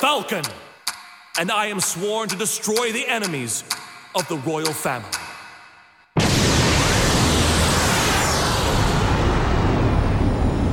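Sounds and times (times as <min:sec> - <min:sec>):
speech: 0:00.1 - 0:00.7, 0:01.4 - 0:05.2
explosion in an animated fight scene: 0:06.2 - 0:10.7.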